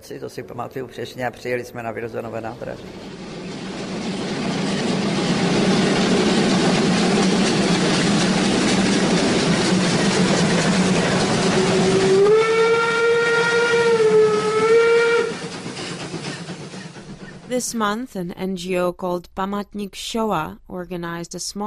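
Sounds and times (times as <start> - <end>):
speech: 0.0 - 3.3, 17.6 - 21.6
steam train chugging: 0.0 - 18.2
steam train whistle blowing: 11.5 - 15.5.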